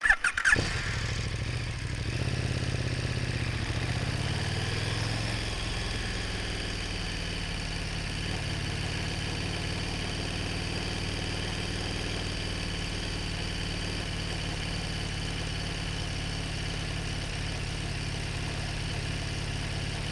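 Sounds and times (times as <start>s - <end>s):
KTM Super Duke R motorcycle engine starting, holding constant rpm and shutting off: 0.0s - 20.1s.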